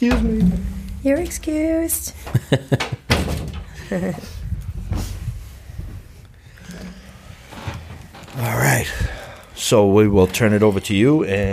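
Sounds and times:
speech: 0.0 - 3.0, 3.9 - 4.4, 9.7 - 11.5
door closing with a firm thud: 0.0 - 4.0
laughter: 2.2 - 3.1, 3.7 - 4.4.

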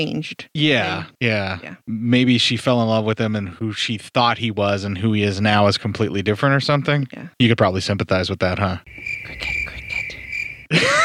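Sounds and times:
speech: 0.0 - 9.6, 10.7 - 11.0
cricket chirping: 8.9 - 10.8
laughter: 10.7 - 11.0.

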